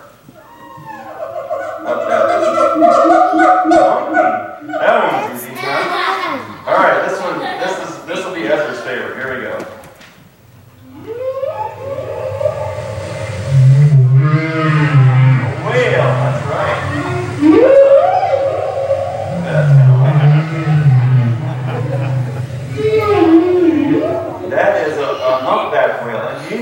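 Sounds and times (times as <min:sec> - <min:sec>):
whale song moans and whoops: 0:00.0 - 0:05.4, 0:10.8 - 0:25.5
laughter: 0:01.0 - 0:03.9, 0:04.8 - 0:07.8, 0:19.4 - 0:26.0
low underwater rumble: 0:12.8 - 0:24.7.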